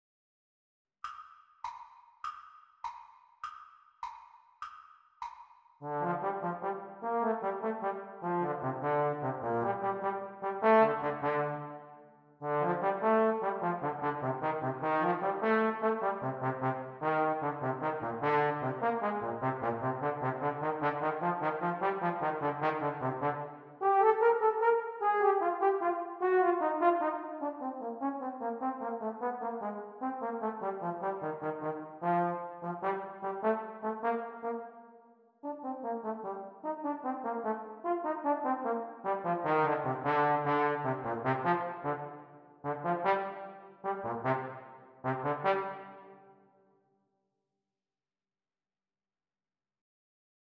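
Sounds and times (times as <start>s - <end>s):
Eb tenor horn duet playalong: 5.8s - 11.7s, 12.4s - 34.6s, 35.4s - 46.1s.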